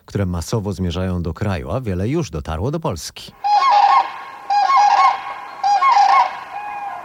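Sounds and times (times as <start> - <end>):
speech: 0.1 - 3.7
migrating common cranes giving rolling trumpet-like klangor calls in Poland: 3.4 - 7.0.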